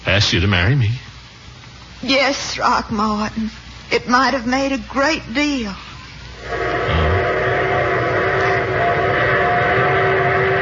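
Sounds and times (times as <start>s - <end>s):
speech: 0.1s - 1.1s, 2.0s - 5.8s
faint sustained tonal hum: 4.0s - 10.6s
train arriving with heavy rumble: 6.4s - 10.6s.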